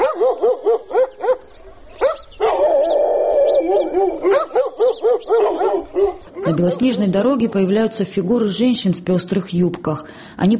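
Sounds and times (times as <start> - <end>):
dogs barking furiously: 0.0 - 7.9
dog whining howl: 2.4 - 6.6
speech: 6.5 - 10.5.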